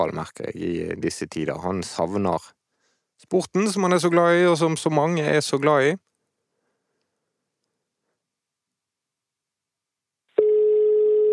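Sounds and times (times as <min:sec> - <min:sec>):
speech: 0:00.0 - 0:02.6, 0:03.2 - 0:06.1
mobile phone ringtone electronic beep: 0:10.4 - 0:11.3.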